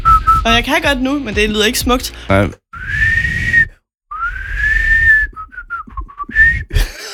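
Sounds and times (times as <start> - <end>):
person whistling an off-key wobbly tune: 0.0 - 0.5, 2.8 - 6.8
speech: 0.4 - 3.0.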